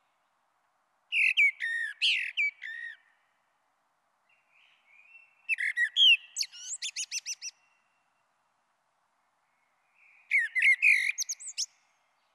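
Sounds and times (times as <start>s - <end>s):
Common blackbird singing a fluted warbling phrase with high twitters: 1.1s - 3.3s, 4.3s - 8.2s, 9.3s - 12.3s.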